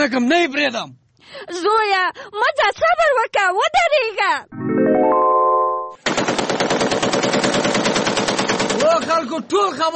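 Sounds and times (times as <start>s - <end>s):
speech: 0.0s - 5.3s, 8.8s - 9.9s
sustained rising tonal chord: 4.5s - 6.0s
rapid automatic gunfire from a rifle: 6.0s - 9.0s.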